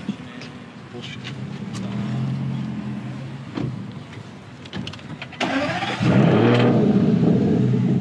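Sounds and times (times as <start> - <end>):
car engine humming while driving: 0.0 - 7.9
speech: 1.0 - 1.4.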